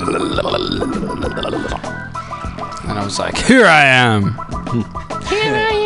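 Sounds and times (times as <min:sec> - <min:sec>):
long loud rough belch: 0:00.0 - 0:01.9
speech: 0:00.4 - 0:01.7, 0:03.1 - 0:05.7.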